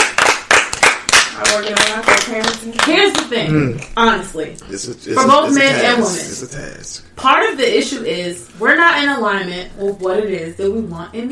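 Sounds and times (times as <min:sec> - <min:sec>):
hands clapping: 0:00.0 - 0:03.3
speech: 0:01.6 - 0:11.2
faint voices murmuring: 0:04.6 - 0:07.0.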